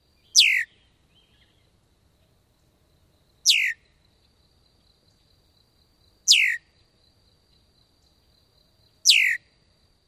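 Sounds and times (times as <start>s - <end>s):
male red-winged blackbird burry alarm whistles: 0.4s - 0.7s.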